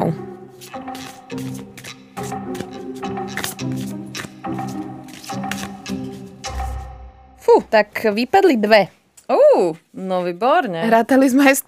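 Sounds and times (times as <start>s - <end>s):
deck of cards shuffled by hand: 0.5s - 6.8s
speech: 7.7s - 11.6s.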